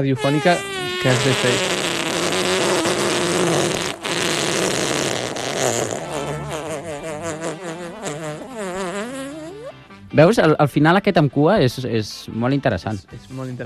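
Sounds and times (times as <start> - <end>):
speech: 0.0 - 1.8, 10.2 - 13.6
fart sound: 0.0 - 9.8.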